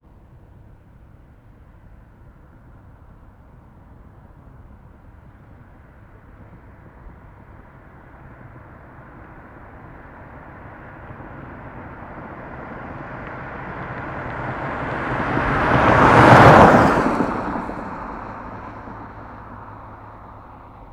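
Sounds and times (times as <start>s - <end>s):
car passing by fast in a desert: 8.2s - 20.9s.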